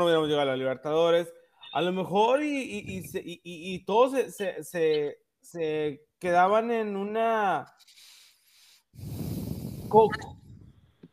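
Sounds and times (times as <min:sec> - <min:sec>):
speech: 0:00.0 - 0:08.1, 0:09.0 - 0:09.2, 0:09.9 - 0:10.4
loud heavy breathing into a microphone: 0:07.8 - 0:10.7.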